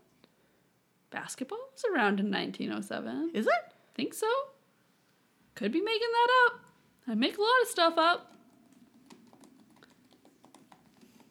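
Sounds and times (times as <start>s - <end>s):
speech: 1.1s - 4.6s, 5.6s - 8.3s
computer keys being typed: 8.3s - 11.2s.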